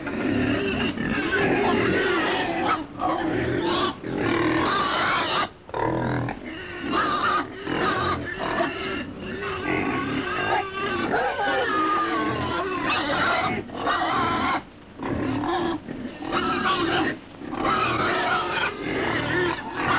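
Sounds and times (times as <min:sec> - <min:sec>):
pig grunting in a pen: 0:00.0 - 0:19.9.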